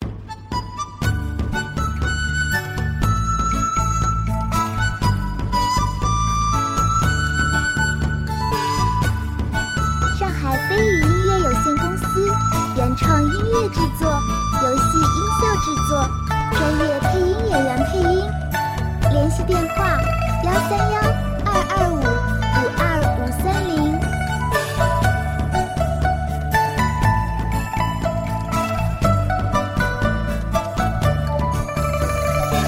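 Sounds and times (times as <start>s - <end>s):
relaxed cheerful Chinese-style dramatic music: 0.0s - 32.6s.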